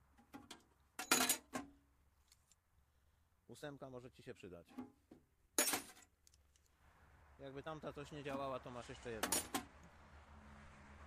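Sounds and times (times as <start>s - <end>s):
standard metal wrenches dropped among other tools clinking: 0.3s - 1.7s, 5.6s - 6.1s, 9.2s - 9.7s
speech: 3.5s - 5.2s, 7.4s - 9.6s.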